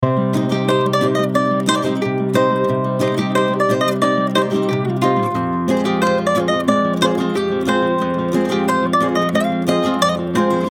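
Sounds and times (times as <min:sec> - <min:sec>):
music loop in C minor: 0:00.4 - 0:10.7.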